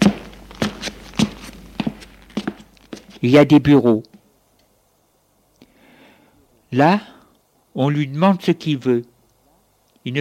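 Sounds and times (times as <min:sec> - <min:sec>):
man's footsteps climbing stairs in an apartment building: 0:00.0 - 0:03.2
speech: 0:03.2 - 0:04.1, 0:06.7 - 0:07.2, 0:07.8 - 0:09.1.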